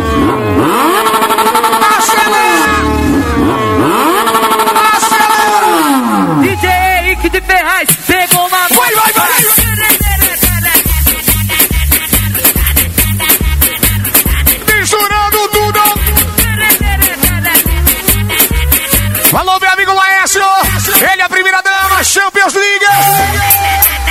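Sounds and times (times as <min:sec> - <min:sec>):
motorcycle engines revving at a party: 0:00.0 - 0:06.6, 0:08.7 - 0:19.4
loud music at a party: 0:00.0 - 0:22.1, 0:22.8 - 0:24.0.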